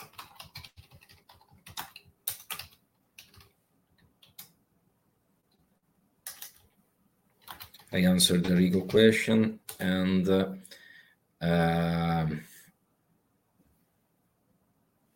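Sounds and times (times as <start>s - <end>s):
typing on a computer keyboard: 0.0s - 4.6s, 6.2s - 6.7s, 7.4s - 8.0s
speech: 7.9s - 10.7s, 11.4s - 12.5s.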